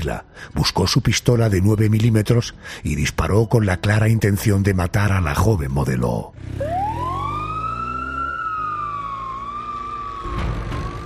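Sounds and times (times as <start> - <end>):
speech: 0.0 - 6.9
ambulance siren wailing: 6.5 - 11.0.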